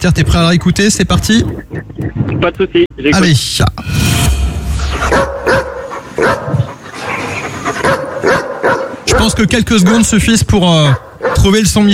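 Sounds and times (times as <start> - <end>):
speech: 0.0 - 4.2, 4.9 - 6.7, 9.2 - 11.9
dog barking: 5.0 - 9.5, 10.9 - 11.6.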